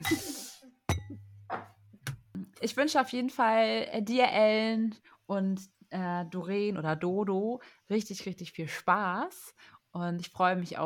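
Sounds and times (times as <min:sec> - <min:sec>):
glasses clinking in a toast: 0:00.0 - 0:01.7
speech: 0:02.6 - 0:10.8.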